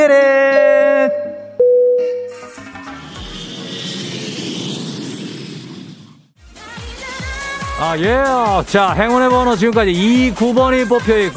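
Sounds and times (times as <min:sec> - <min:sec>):
speech: 0:00.1 - 0:00.4, 0:07.8 - 0:11.3
electronic chime-like tones: 0:00.5 - 0:02.7
tonal music: 0:00.5 - 0:02.8
jet engine roar: 0:02.4 - 0:06.4.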